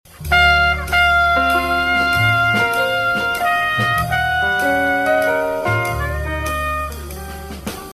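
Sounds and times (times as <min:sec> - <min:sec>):
piano voicing chords: 0:00.2 - 0:07.9.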